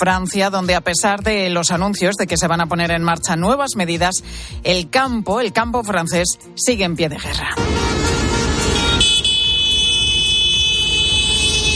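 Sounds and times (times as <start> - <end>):
speech: 0.0 - 8.0
dense traffic noise from a large convoy of farm vehicles: 7.1 - 11.7
rumble of many heavy tractor engines in a large farm vehicle convoy: 7.3 - 11.7
sustained blaring horn: 7.6 - 11.7.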